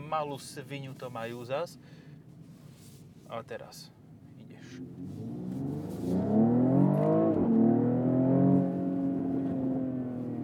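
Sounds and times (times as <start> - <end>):
speech: 0.1 - 2.0, 3.3 - 4.0, 4.6 - 5.2
car engine revving: 4.8 - 10.4.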